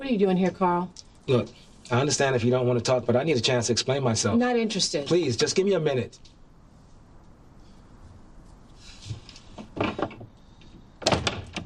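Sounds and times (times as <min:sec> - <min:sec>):
speech: 0:00.1 - 0:06.4
door opening and shutting with scraping and knocking: 0:09.1 - 0:11.6
door clunk: 0:11.0 - 0:11.6.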